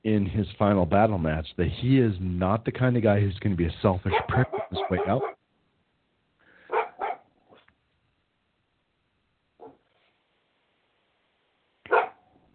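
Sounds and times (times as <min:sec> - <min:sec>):
speech: 0:00.0 - 0:05.4
dog barking: 0:04.1 - 0:05.4, 0:06.6 - 0:07.7, 0:09.6 - 0:09.9, 0:11.8 - 0:12.3.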